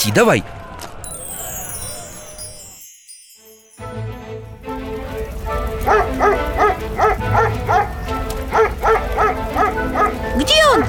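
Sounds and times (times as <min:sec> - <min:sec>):
speech: 0:00.0 - 0:00.6
busy rumbling noise: 0:04.6 - 0:10.8
dog barking: 0:05.8 - 0:10.8.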